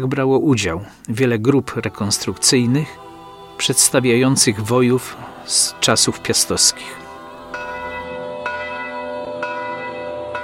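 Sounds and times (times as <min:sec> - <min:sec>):
speech: 0:00.0 - 0:07.7
large church bell tolling: 0:04.9 - 0:10.4.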